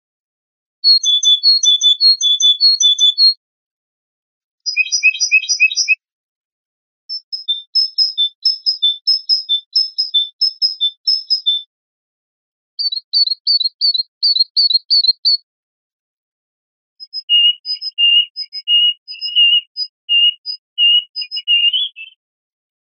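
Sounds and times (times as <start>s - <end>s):
great tit singing in spring: 0.8s - 3.4s, 4.7s - 6.0s, 7.1s - 11.7s, 12.8s - 15.4s, 17.0s - 22.2s.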